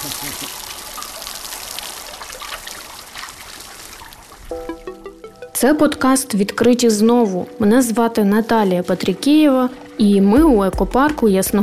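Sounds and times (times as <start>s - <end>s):
hose spraying water on ostriches: 0.0s - 4.5s
speech: 0.1s - 0.8s, 4.5s - 4.8s, 5.6s - 11.6s.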